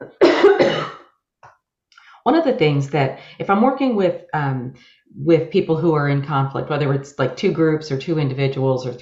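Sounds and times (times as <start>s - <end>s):
harsh raspy cough in two quick bursts: 0.0s - 1.1s
speech: 2.3s - 9.0s.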